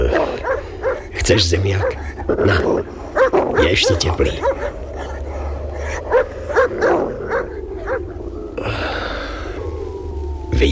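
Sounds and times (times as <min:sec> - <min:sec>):
sheepdog barking: 0:00.0 - 0:08.0
steady low rumble: 0:00.0 - 0:10.6
speech: 0:01.3 - 0:04.6.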